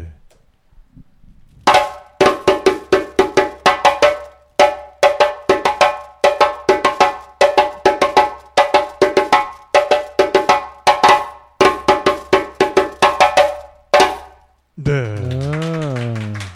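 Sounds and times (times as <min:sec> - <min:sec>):
person speaking: 0:00.0 - 0:00.3, 0:14.8 - 0:16.4
West African djembe accompaniment rhythm: 0:01.7 - 0:14.4.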